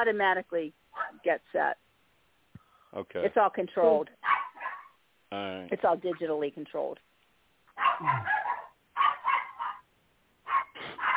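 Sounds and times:
speech: 0:00.0 - 0:01.8, 0:02.9 - 0:04.4, 0:05.3 - 0:07.1, 0:07.8 - 0:08.5
dog barking: 0:01.0 - 0:01.2, 0:04.2 - 0:05.0, 0:07.8 - 0:11.1.

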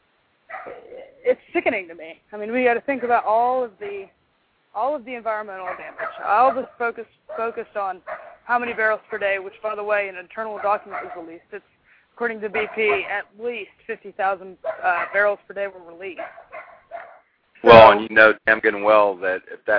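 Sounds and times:
dog barking in the background: 0:00.5 - 0:00.9, 0:05.6 - 0:09.2, 0:10.6 - 0:11.3, 0:12.5 - 0:13.2, 0:14.6 - 0:15.3, 0:16.2 - 0:17.3
speech: 0:01.2 - 0:16.4, 0:17.6 - 0:19.7.

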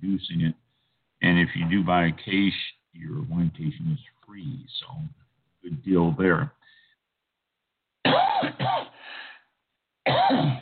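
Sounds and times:
speech: 0:00.0 - 0:00.6, 0:01.2 - 0:06.8, 0:10.3 - 0:10.5
person coughing: 0:08.0 - 0:09.0, 0:10.1 - 0:10.5.

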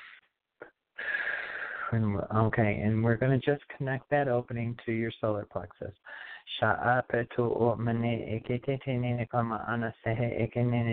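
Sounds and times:
deep breath in and out: 0:01.0 - 0:02.0, 0:06.0 - 0:06.5
speech: 0:01.9 - 0:10.9.

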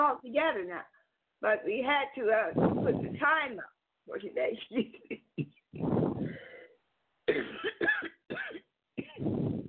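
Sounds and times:
speech: 0:00.0 - 0:06.5
person coughing: 0:05.0 - 0:06.6, 0:07.3 - 0:09.6.

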